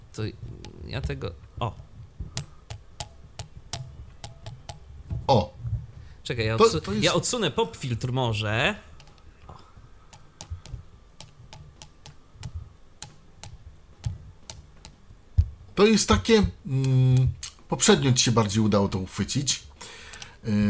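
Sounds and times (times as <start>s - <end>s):
speech: 0.2s - 1.9s, 5.3s - 5.5s, 6.3s - 8.9s, 15.8s - 20.6s
sharp metallic tapping on a titanium headphone frame: 0.3s - 5.3s, 8.9s - 15.6s, 20.1s - 20.5s.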